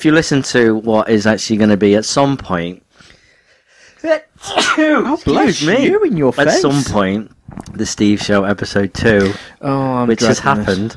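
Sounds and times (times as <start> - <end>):
speech: 0.0 - 2.8, 4.0 - 10.9
person sneezing while eating: 4.4 - 5.1.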